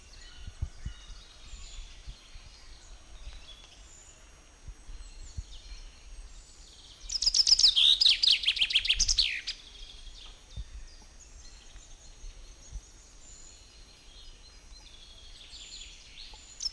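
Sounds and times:
common chaffinch Fringilla coelebs singing: 0.0s - 16.7s
quiet background birds: 0.0s - 16.7s.

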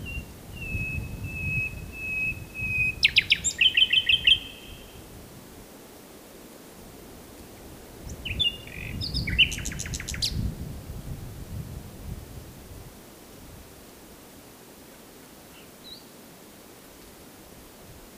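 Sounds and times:
Common nightingale Luscinia megarhynchos song phrases: 0.0s - 5.0s, 8.1s - 10.4s, 15.5s - 16.1s.

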